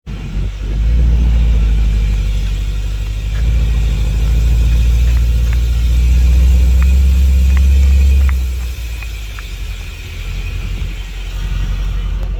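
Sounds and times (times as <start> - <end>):
Mercedes-AMG S63 4MATIC W222 rear brakes squealing: 0.2 - 12.3.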